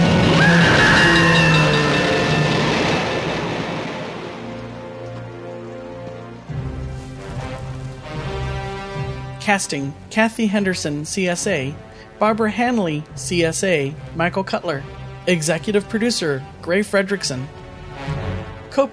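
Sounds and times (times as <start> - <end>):
oncoming train roaring rush: 0.1 - 5.0
steady high tonal whine: 0.4 - 4.8
sustained tones: 0.4 - 4.9
speech: 9.5 - 17.6, 18.7 - 18.9.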